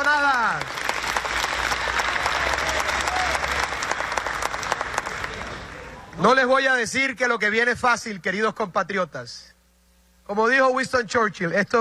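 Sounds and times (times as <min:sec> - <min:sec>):
large audience applauding: 0:00.0 - 0:06.0
speech: 0:06.2 - 0:09.6, 0:10.3 - 0:11.8.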